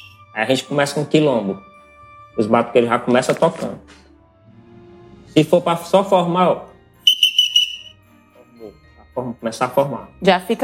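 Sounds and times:
shrill whistle blown as a formation signal: 0:00.0 - 0:00.2, 0:07.0 - 0:08.0
speech: 0:00.4 - 0:01.7, 0:02.4 - 0:04.0, 0:05.3 - 0:06.7, 0:08.6 - 0:10.6.

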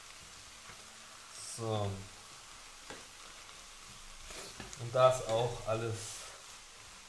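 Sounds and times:
mushrooms and leek pieces frying in a pan: 0:00.0 - 0:07.0
speech: 0:01.6 - 0:02.1, 0:04.8 - 0:06.2
soft scraping stirs in a frying pan: 0:04.2 - 0:05.4.

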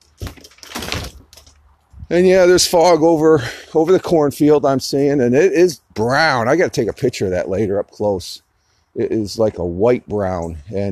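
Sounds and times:
screen door swinging shut against the frame: 0:00.0 - 0:01.6
speech: 0:02.1 - 0:08.4, 0:09.0 - 0:10.8.

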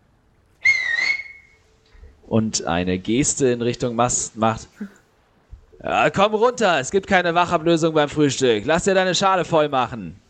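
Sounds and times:
loud shrill finger whistle: 0:00.6 - 0:01.6
speech: 0:02.3 - 0:05.0, 0:05.8 - 0:10.2.

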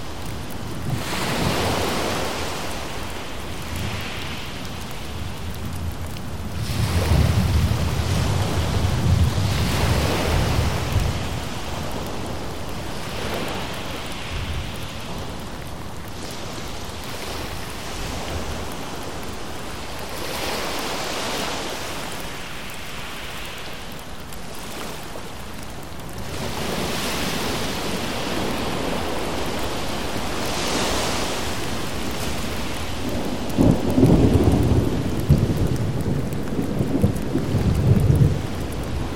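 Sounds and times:
ocean waves: 0:00.0 - 0:39.1
rain falling: 0:00.0 - 0:39.1
deep thunder rumbles: 0:05.6 - 0:12.4, 0:32.8 - 0:39.1.

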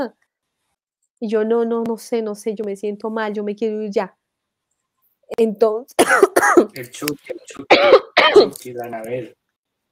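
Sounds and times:
speech: 0:00.0 - 0:00.2, 0:01.2 - 0:04.2, 0:05.3 - 0:09.4
woman clearing throat: 0:06.0 - 0:06.7, 0:07.7 - 0:08.6
woman coughing: 0:06.0 - 0:06.8, 0:07.7 - 0:08.6.

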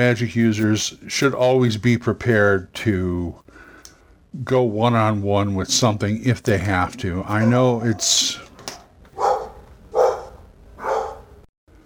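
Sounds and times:
speech: 0:00.0 - 0:03.5, 0:04.4 - 0:08.5
dog barking: 0:07.3 - 0:08.2, 0:08.8 - 0:11.4.

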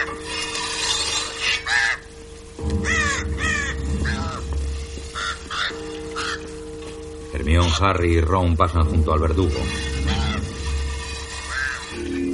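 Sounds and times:
crows cawing in a castle entrance courtyard: 0:01.0 - 0:06.8, 0:09.7 - 0:12.3
speech: 0:07.4 - 0:09.9.

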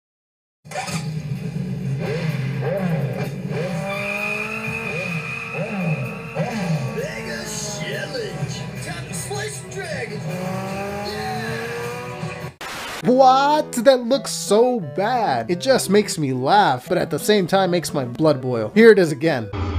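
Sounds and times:
motorcycle engine revving: 0:00.7 - 0:12.6
other vehicle noise: 0:00.7 - 0:12.6
speech: 0:13.1 - 0:19.7.

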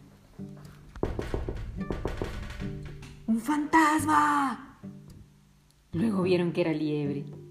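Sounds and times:
sharp knocking on a window: 0:01.0 - 0:03.2
speech: 0:03.4 - 0:04.6, 0:06.0 - 0:07.4.

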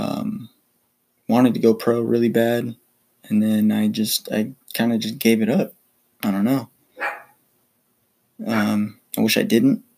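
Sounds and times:
speech: 0:01.3 - 0:06.7, 0:08.4 - 0:09.9
dog barking outside: 0:07.0 - 0:07.4, 0:08.4 - 0:08.8.

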